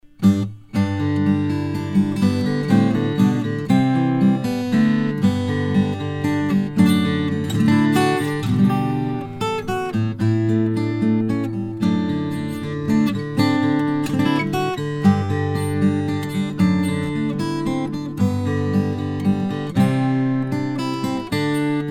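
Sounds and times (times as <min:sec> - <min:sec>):
guitar playing for a mic test: 0:00.1 - 0:21.8.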